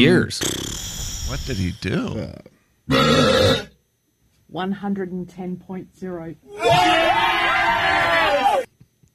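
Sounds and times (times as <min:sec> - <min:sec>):
speech: 0:00.0 - 0:00.7, 0:01.3 - 0:03.7, 0:04.5 - 0:08.1
loud deep drawn-out burp: 0:02.9 - 0:03.8
crowd cheering and shouting: 0:06.5 - 0:08.7.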